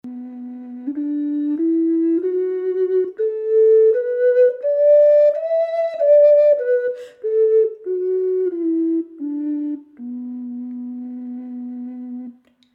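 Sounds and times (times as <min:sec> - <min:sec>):
bass ocarina in B: 0:00.0 - 0:12.4.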